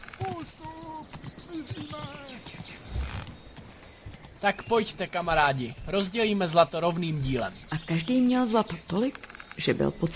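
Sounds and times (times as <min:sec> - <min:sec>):
horses galloping with hooves clip-clopping: 0:00.0 - 0:06.1
speech: 0:04.4 - 0:10.1.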